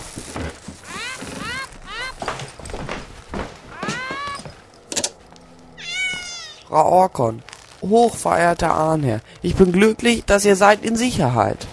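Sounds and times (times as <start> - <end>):
cat meowing in a laboratory: 0.8 - 2.3, 3.7 - 4.5, 5.8 - 6.7
speech: 6.7 - 11.7.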